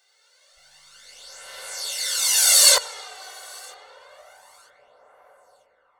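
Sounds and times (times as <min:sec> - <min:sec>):
reversed crash cymbal: 0:00.7 - 0:05.2.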